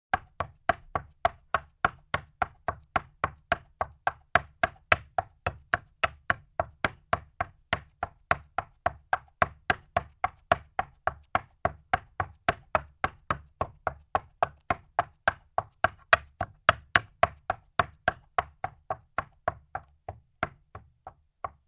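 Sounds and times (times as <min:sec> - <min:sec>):
horse walking on a wooden floor: 0:00.1 - 0:21.6.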